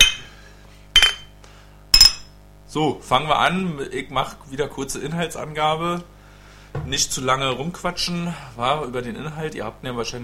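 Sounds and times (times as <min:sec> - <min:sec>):
glasses clinking in a toast: 0:00.0 - 0:00.3, 0:01.0 - 0:01.3, 0:02.0 - 0:02.3
speech: 0:02.8 - 0:06.2, 0:06.8 - 0:10.2.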